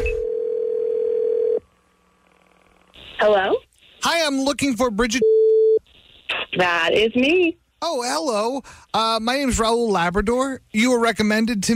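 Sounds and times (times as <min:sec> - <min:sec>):
steady telephone tone on an outgoing call: 0:00.0 - 0:01.6
speech: 0:03.2 - 0:05.3, 0:06.6 - 0:11.7.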